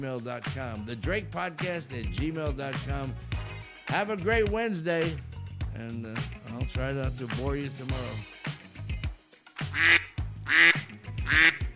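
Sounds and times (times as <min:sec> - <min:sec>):
speech: 0:00.0 - 0:08.6, 0:09.8 - 0:11.6
duck quacking: 0:09.7 - 0:11.7.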